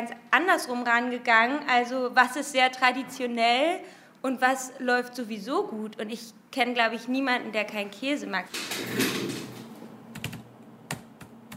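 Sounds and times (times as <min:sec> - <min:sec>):
speech: 0:00.0 - 0:09.3
laptop keyboard keys clicking while typing commands: 0:10.1 - 0:11.5.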